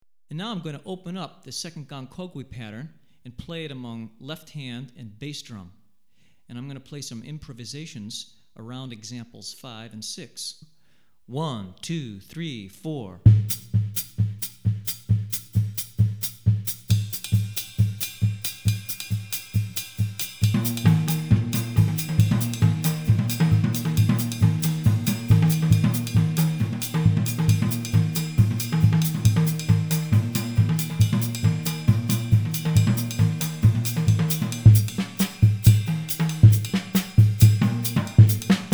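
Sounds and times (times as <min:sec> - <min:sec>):
drumset playing West African Gahu rhythms: 0:13.3 - 0:38.7.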